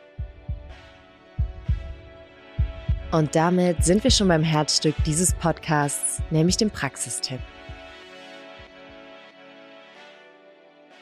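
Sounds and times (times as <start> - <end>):
heartbeat thumping in a lub-dub rhythm: 0.2 - 6.8, 7.4 - 8.0
speech: 3.1 - 7.7.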